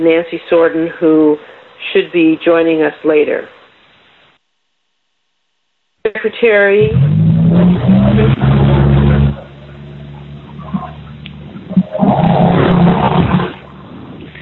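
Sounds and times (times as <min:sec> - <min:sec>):
speech: 0:00.0 - 0:03.6, 0:06.1 - 0:08.5
truck engine passing by: 0:06.8 - 0:13.8.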